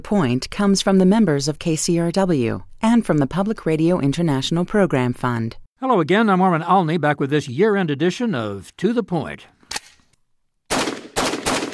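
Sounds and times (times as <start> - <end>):
speech: 0.0 - 9.6
homemade metal AR-15 rifle emptying a magazine: 10.7 - 11.7.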